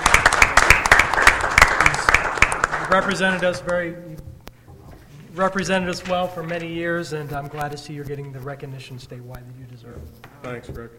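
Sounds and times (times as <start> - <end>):
applause at a gathering: 0.0 - 3.7
speech: 2.9 - 4.3, 5.3 - 10.9.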